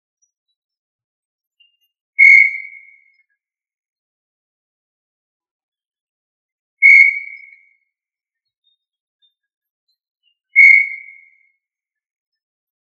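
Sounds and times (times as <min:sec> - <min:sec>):
tinamou whistled notes: 0:02.2 - 0:03.0, 0:06.8 - 0:07.6, 0:10.6 - 0:11.4.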